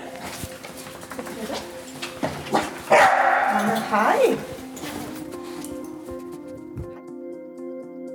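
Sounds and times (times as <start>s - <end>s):
dog barking in high-pitched shrill yelps: 2.5s - 4.5s
speech: 3.9s - 4.6s.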